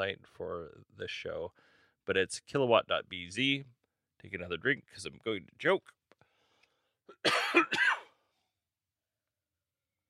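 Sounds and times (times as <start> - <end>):
speech: 0.0 - 6.0, 7.2 - 8.0
harsh coughing and throat clearing: 7.1 - 8.2.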